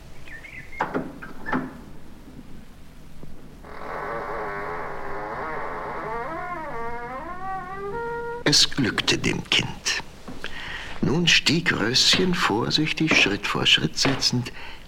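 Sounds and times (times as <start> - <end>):
heavy old door hinge creaking in an ancient crumbling tower: 3.6 - 8.5
speech: 8.5 - 10.0, 11.0 - 14.8.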